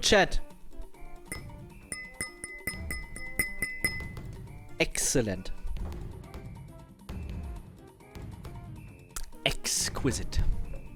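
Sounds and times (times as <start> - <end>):
speech: 0.0 - 0.5, 4.8 - 5.6, 9.7 - 10.6
glass of sparkling wine clinking: 0.7 - 4.4.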